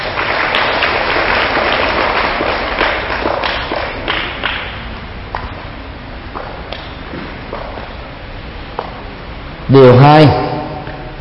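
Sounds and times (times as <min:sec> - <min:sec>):
group of children applauding: 0:00.0 - 0:05.4
speech: 0:09.7 - 0:10.4.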